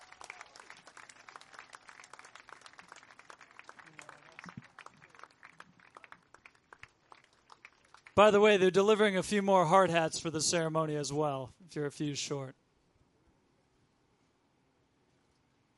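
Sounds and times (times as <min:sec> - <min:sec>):
crowd applauding: 0:00.0 - 0:08.7
speech: 0:08.2 - 0:12.6.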